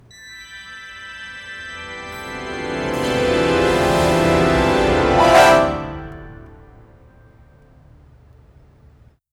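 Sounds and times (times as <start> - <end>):
orchestral rise: 0.5 - 7.3.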